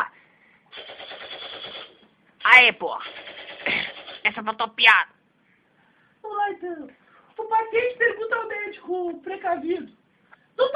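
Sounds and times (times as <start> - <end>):
quiet hiss: 0.0 - 0.7, 4.3 - 10.7
gunshot sound effect rapid rattling burst of shots: 0.8 - 2.0, 3.0 - 4.4
speech: 2.6 - 3.2, 4.3 - 5.1, 6.4 - 10.0, 10.6 - 10.7.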